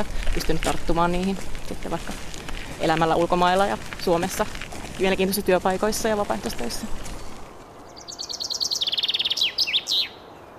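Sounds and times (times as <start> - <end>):
speech: 0.0 - 7.1
common chaffinch singing: 7.8 - 10.5.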